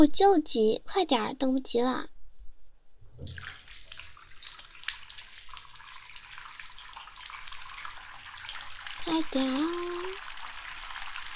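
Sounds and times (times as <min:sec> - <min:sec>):
speech: 0:00.0 - 0:02.1, 0:03.2 - 0:03.6, 0:09.0 - 0:10.0
water running to fill a bath: 0:03.2 - 0:11.3.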